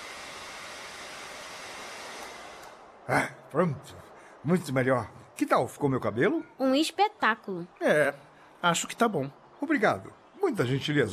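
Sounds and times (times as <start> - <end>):
hair dryer blowing: 0.0 - 3.0
speech: 3.1 - 11.1.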